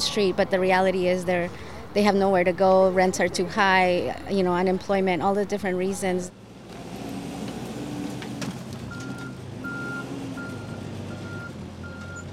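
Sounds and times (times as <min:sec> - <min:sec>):
speech: 0:00.2 - 0:06.4
garbage truck heavy diesel engine idling in a street: 0:06.3 - 0:12.3
garbage truck reversing alarm beeping: 0:08.9 - 0:12.3.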